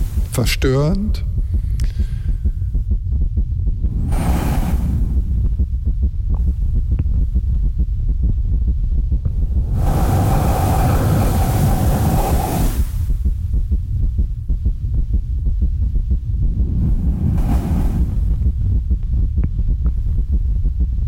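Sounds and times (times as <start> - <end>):
deep throbbing heartbeat picked up by microphone at the neck: 0.0 - 21.0
low rumbling hum: 0.0 - 21.0
speech: 0.4 - 2.0
washes of airy noise: 3.8 - 5.5, 9.4 - 13.2, 16.4 - 18.6.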